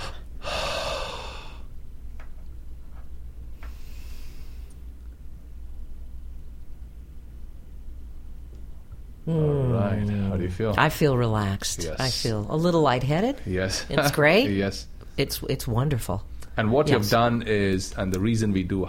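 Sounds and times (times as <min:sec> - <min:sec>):
deep breath in during a relaxation breathing exercise: 0:00.0 - 0:01.7, 0:03.6 - 0:04.8
speech: 0:09.3 - 0:18.8.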